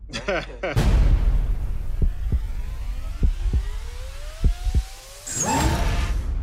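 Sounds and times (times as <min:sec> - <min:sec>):
laughter: 0:00.1 - 0:00.9
speech: 0:00.3 - 0:01.1
drone flying and whirring: 0:01.5 - 0:06.4.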